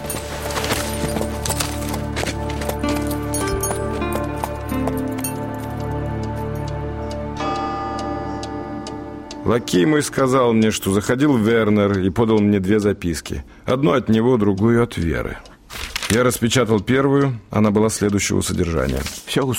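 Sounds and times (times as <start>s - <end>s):
hooves of an exhausted horse being ridden clip-clopping: 0.0s - 6.2s
sustained bed of tonal music-like sound: 0.0s - 12.4s
speech: 9.5s - 15.5s, 16.1s - 19.5s.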